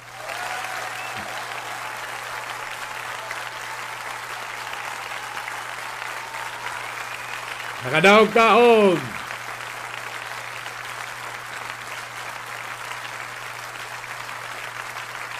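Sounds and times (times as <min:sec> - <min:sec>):
crowd applause: 0:00.0 - 0:15.3
speech: 0:07.8 - 0:09.1.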